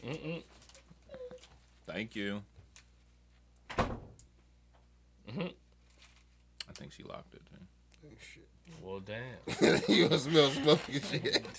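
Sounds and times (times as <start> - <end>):
speech: 2.0 - 2.5, 6.9 - 11.5
door at the top of the stairs bumping shut: 3.7 - 4.2
laughter: 9.4 - 11.5.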